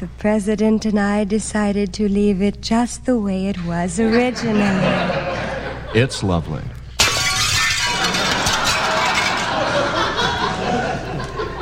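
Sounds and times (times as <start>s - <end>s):
speech: 0.0s - 5.2s, 5.9s - 6.8s
people laughing: 4.0s - 6.4s, 7.9s - 11.6s
glass shards tinkling: 7.0s - 9.8s
football crashing through glass French windows: 7.0s - 10.2s.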